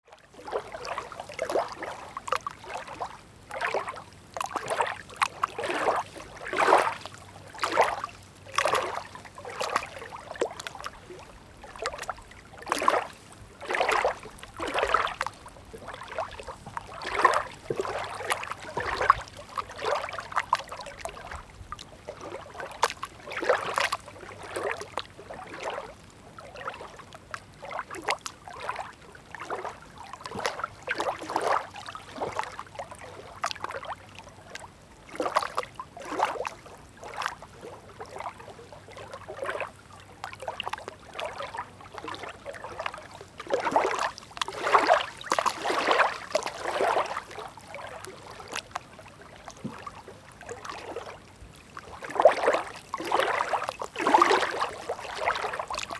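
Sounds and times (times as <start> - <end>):
quiet waves on a beach, close perspective: 0.0 - 55.9.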